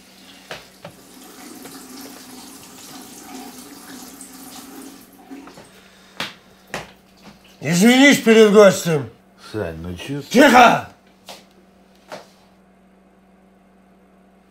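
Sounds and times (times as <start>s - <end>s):
kitchen tap running in a continuous stream: 0.3s - 7.6s
speech: 7.6s - 10.9s.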